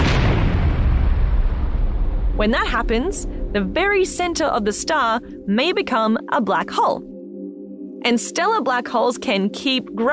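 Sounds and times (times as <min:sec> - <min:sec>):
deep explosion boom: 0:00.0 - 0:05.5
speech: 0:02.4 - 0:07.1, 0:08.0 - 0:10.1.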